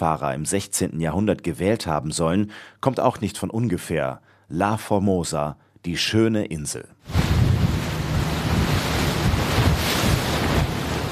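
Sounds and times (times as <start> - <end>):
speech: 0.0 - 7.2
waves washing around tourist boat heading to Turtle Island: 7.1 - 11.1
wind buffeting microphone aboard tourist boat off Taiwan: 7.1 - 11.1.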